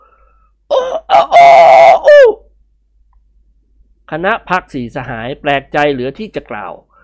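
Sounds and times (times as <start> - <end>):
person imitating a rooster crow: 0.7 - 2.5
speech: 4.1 - 6.9.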